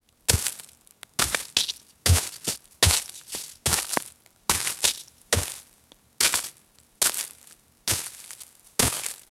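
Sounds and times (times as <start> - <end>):
footsteps crunching in ash or debris: 0.3 - 9.3.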